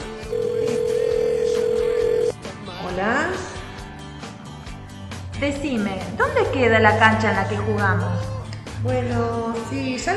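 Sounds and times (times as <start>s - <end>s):
steady telephone tone of a call being placed: 0.3s - 2.3s
speech: 5.4s - 10.1s.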